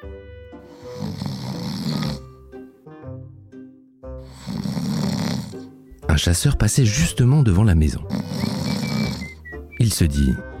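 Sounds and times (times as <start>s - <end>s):
loud rasping snoring: 0.7s - 2.5s, 4.2s - 5.8s, 8.0s - 9.6s
speech: 6.2s - 8.6s, 9.8s - 10.5s.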